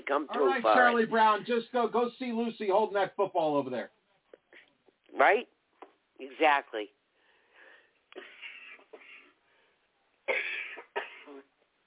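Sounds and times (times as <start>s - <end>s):
speech: 0.1s - 4.0s, 5.1s - 5.6s, 6.2s - 7.0s
harsh wheezy rasping coughs: 8.1s - 9.4s, 10.3s - 11.5s.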